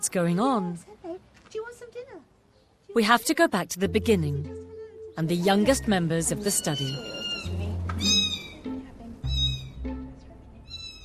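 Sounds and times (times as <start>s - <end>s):
speech: 0.0s - 1.0s, 2.9s - 7.2s
several one-week-old kittens mewing: 6.5s - 8.6s, 9.3s - 9.8s
low rumble: 7.5s - 11.0s.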